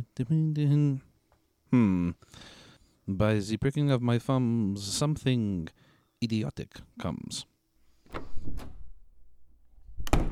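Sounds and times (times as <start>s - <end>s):
speech: 0.2s - 1.1s, 1.7s - 7.5s
heavy thumps against a door being forced open: 10.0s - 10.3s.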